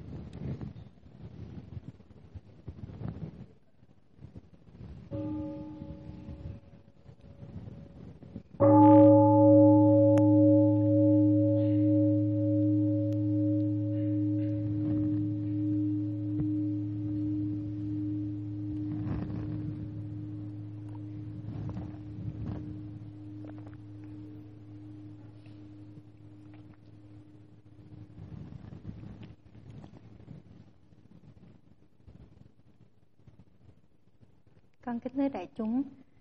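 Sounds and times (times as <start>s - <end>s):
meditation bell ringing during a Buddhist sitting meditation: 5.1s - 29.2s.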